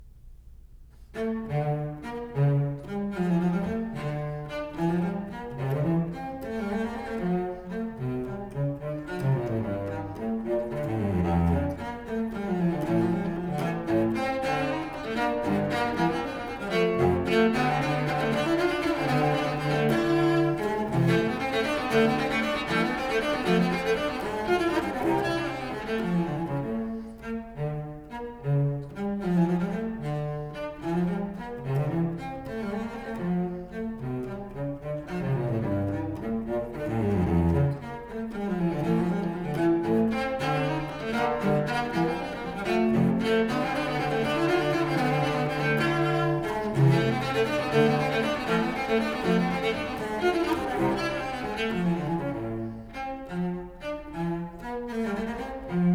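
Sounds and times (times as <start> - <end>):
solo cello playing a gigue in D minor: 1.0 - 55.9.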